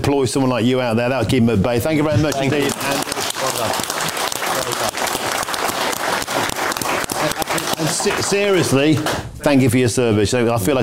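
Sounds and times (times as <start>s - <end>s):
speech: 0.1s - 3.9s, 8.0s - 10.8s
large audience applauding loudly: 2.2s - 9.3s.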